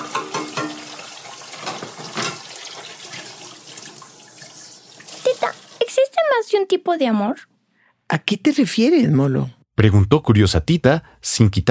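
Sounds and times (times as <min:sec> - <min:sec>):
tap water running while dishes are rinsed: 0:00.0 - 0:06.1
speech: 0:06.5 - 0:07.5, 0:08.1 - 0:11.6.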